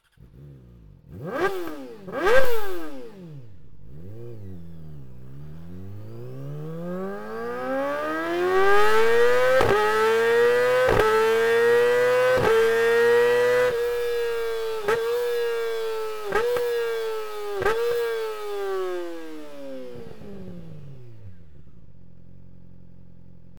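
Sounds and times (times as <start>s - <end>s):
exhaust: 0.0s - 23.5s.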